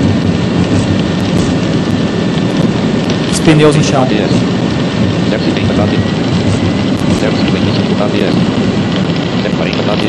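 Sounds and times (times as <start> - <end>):
heavy rain drumming against an aircraft rolling out after landing: 0.0 - 10.0
low roar of aircraft rolling out after landing: 0.0 - 10.0
speech: 3.5 - 6.3, 7.2 - 10.0.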